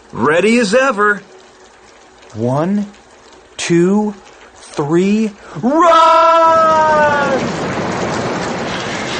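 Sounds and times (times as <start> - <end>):
heavy rain in a storm: 0.0 - 9.1
speech: 0.1 - 1.3, 2.3 - 3.0, 3.6 - 4.2, 4.8 - 7.6
gusting wind in a storm: 6.4 - 9.1.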